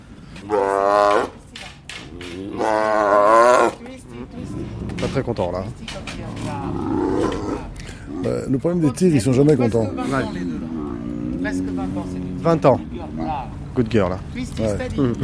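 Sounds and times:
speech: 0.4s - 1.3s, 5.2s - 6.8s, 8.2s - 10.5s, 12.0s - 15.2s
tigers roaring while leaving cage: 0.4s - 1.4s, 2.1s - 3.8s, 6.2s - 8.6s, 9.6s - 13.4s
laughter: 14.9s - 15.2s.

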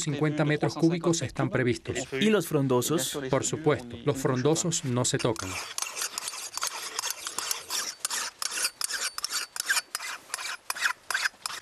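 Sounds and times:
speech: 0.0s - 5.9s
forester's marking hammer scraping tree bark: 5.1s - 11.6s.

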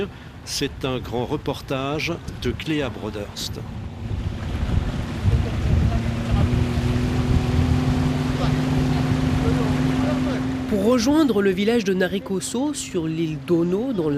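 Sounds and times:
speech: 0.0s - 3.8s, 10.7s - 14.1s
water splashing around a motorboat: 0.0s - 14.1s
wind buffeting the microphone: 0.6s - 10.6s
small motorboat engine droning on the water near Ono Island in Fiji: 3.6s - 14.1s.

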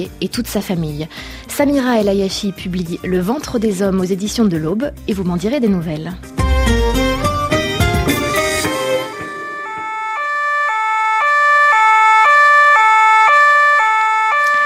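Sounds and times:
speech: 0.0s - 6.9s
two-tone police siren: 8.1s - 14.6s.

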